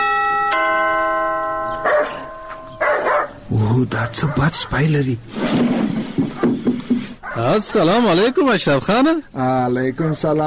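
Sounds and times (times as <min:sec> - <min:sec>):
electronic front-door bell chiming at a house: 0:00.0 - 0:03.2
speech: 0:03.7 - 0:06.6, 0:07.4 - 0:10.4.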